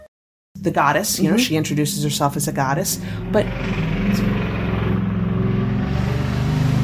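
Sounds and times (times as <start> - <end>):
speech: 0.6 - 3.9
car driving past on the street with low engine rumble: 3.0 - 6.8.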